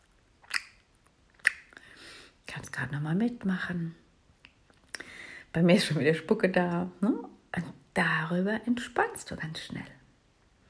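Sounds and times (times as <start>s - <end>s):
slow relishing lip smacking: 0.0s - 1.9s
speech: 2.8s - 4.0s, 5.5s - 10.0s.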